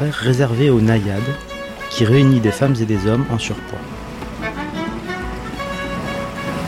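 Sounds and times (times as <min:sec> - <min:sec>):
speech: 0:00.0 - 0:04.0
water noise at an indoor public swimming pool in Paris: 0:00.0 - 0:06.6.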